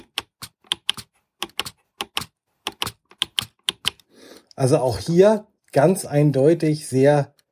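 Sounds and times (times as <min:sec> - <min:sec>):
braille display navigation bar clicking: 0:00.0 - 0:04.1
speech: 0:04.6 - 0:07.4.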